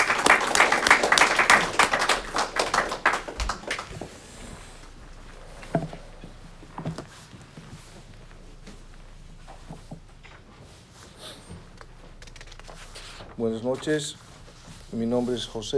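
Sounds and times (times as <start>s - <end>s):
small audience applauding a speaker: 0.0s - 6.3s
speech: 13.4s - 14.2s, 14.9s - 15.7s.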